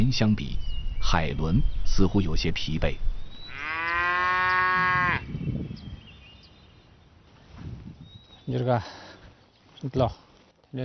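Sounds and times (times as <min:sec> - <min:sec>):
speech: 0:00.1 - 0:03.1, 0:08.5 - 0:09.1, 0:09.8 - 0:10.8
cattle mooing in a herd: 0:03.5 - 0:05.2
rustling and shuffling: 0:07.0 - 0:10.8.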